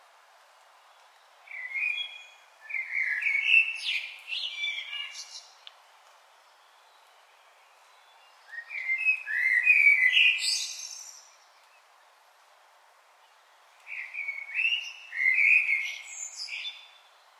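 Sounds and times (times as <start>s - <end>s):
Common blackbird Turdus merula melodious whistled phrases with high chattering tails: 1.5s - 5.6s, 6.6s - 11.7s, 13.9s - 17.1s.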